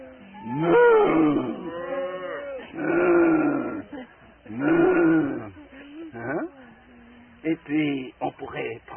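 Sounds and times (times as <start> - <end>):
person imitating a big cow mooing: 0.1 - 3.8, 4.5 - 5.6
speech: 0.4 - 1.5.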